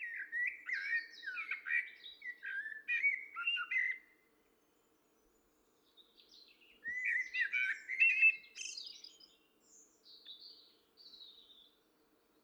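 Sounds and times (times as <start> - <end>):
common blackbird Turdus merula singing: 0.0 - 4.0, 6.0 - 11.8.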